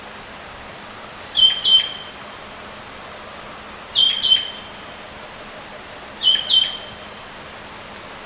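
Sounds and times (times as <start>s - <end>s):
Javan green magpie piercing two-note whistled call: 1.4s - 2.2s, 4.0s - 4.8s, 6.2s - 7.2s.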